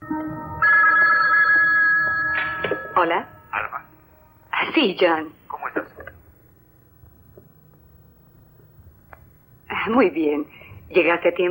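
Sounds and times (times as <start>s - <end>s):
electronic telephone ringing: 0.0s - 4.2s
speech: 3.0s - 3.9s, 4.6s - 5.4s, 9.8s - 11.4s.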